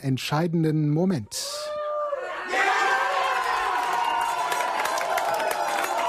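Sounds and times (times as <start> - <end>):
speech: 0.0 - 1.7
large crowd at a public viewing in Kiel Germany cheering and shouting: 1.6 - 6.0
people clapping: 2.6 - 6.0.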